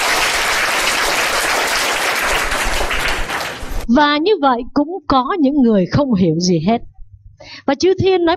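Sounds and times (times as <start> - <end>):
crowd applauding: 0.0 - 3.9
speech: 3.9 - 8.3.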